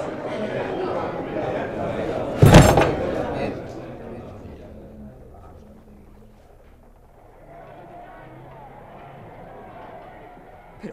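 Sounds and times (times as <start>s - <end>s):
murmur of voices: 0.0s - 10.9s
door swinging shut with a heavy thud: 2.4s - 3.4s.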